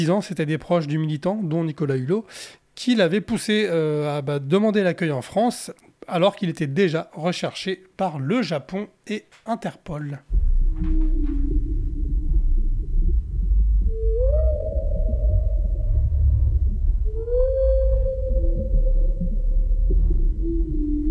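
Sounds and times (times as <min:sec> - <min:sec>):
speech: 0:00.0 - 0:10.9
constant deep rumble of underwater noise: 0:10.3 - 0:21.1
whale song recorded off Réunion Island: 0:10.3 - 0:21.1.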